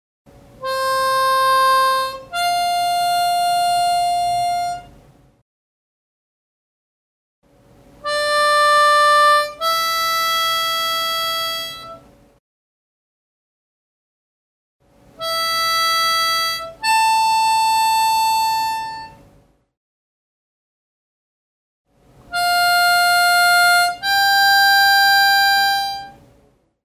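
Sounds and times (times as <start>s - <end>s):
harmonica single notes on opposite air: 0.6s - 5.0s, 8.0s - 12.1s, 15.2s - 19.3s, 22.3s - 26.2s.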